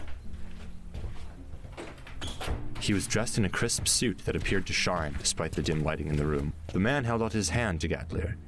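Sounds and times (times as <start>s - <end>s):
large ornate door scraping and creaking as it swings: 1.7s - 7.0s
speech: 2.8s - 8.4s.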